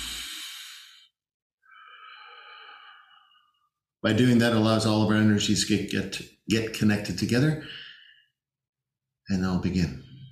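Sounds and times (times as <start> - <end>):
deep relaxation breathing in through the nose and out through the mouth: 0.0 - 3.9, 7.6 - 8.4
speech: 4.0 - 7.8, 9.3 - 10.1.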